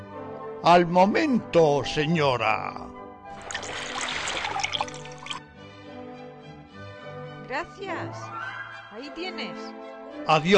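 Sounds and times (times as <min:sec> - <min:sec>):
speech: 0:00.6 - 0:03.8, 0:07.5 - 0:08.4, 0:09.0 - 0:10.5
water pouring from a clay jug into a large jar: 0:03.3 - 0:05.5.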